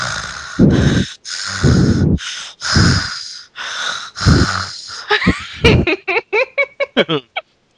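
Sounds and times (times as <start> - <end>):
hyperventilating heavy breathing into microphone: 0.0 - 5.9
laughter: 5.0 - 7.4.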